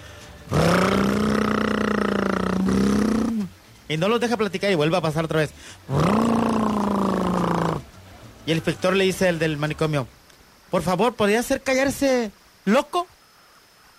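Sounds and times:
voice imitating a motorcycle engine: 0:00.5 - 0:03.6, 0:05.9 - 0:07.9
speech: 0:03.9 - 0:06.4, 0:08.5 - 0:13.1.

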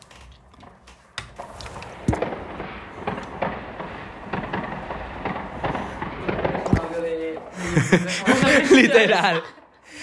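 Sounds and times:
fireworks crackling and popping outside the window: 0:00.0 - 0:08.8
laughter: 0:07.5 - 0:10.0
speech: 0:07.8 - 0:09.6.

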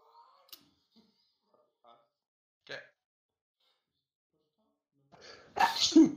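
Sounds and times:
person sneezing: 0:05.6 - 0:06.1.

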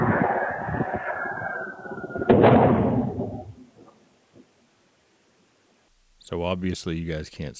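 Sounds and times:
loud bang of object crashing from sky in a neighborhood at night: 0:00.0 - 0:03.6
rushing whooshing noise of an object falling from the sky: 0:00.0 - 0:03.6
rumbling decay: 0:00.0 - 0:04.4
speech: 0:06.3 - 0:07.5.

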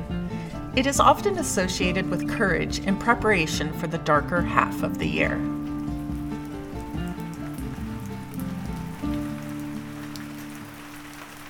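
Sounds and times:
speech: 0:00.8 - 0:05.6
heavy rain falling in an orchard: 0:05.4 - 0:11.4.

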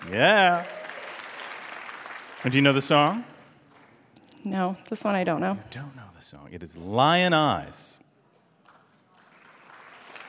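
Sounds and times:
light smattering of audience applause: 0:00.0 - 0:04.0, 0:08.6 - 0:10.2
speech: 0:00.1 - 0:00.8, 0:02.4 - 0:03.3, 0:04.4 - 0:08.0.

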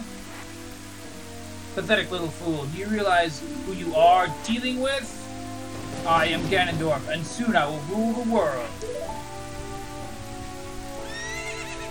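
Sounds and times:
heavy rain hissing: 0:00.0 - 0:11.9
speech: 0:01.8 - 0:05.2, 0:06.0 - 0:09.3
horse whinnying as it rears up: 0:11.0 - 0:11.9.

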